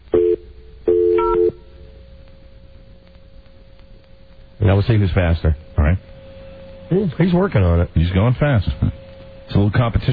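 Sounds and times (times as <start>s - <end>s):
touch-tone telephone dialing dual-tone beeps: 1.0s - 1.5s
speech: 4.8s - 6.1s, 6.9s - 10.1s.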